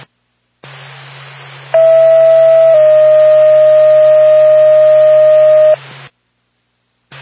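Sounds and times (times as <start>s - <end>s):
static hiss: 0.0s - 6.2s, 7.0s - 7.1s
low hum: 1.8s - 5.8s
radio dispatch alert tone for an ambulance call: 1.8s - 5.8s.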